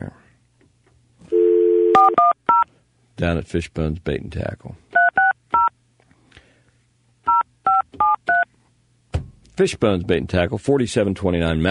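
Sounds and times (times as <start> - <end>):
touch-tone telephone keypad dual-tone beeps while dialing: 1.3 - 2.6, 5.0 - 5.7, 7.3 - 8.5
speech: 3.2 - 4.9, 9.6 - 11.7.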